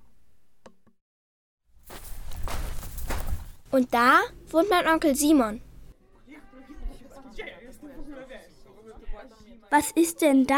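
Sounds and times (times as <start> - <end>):
footsteps of children walking: 1.8 - 3.8
speech: 3.7 - 5.7, 9.2 - 10.5.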